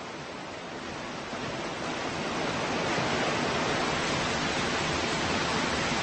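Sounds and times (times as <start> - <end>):
rushing waterfall where brown bears gather to catch salmon: 0.0 - 6.0.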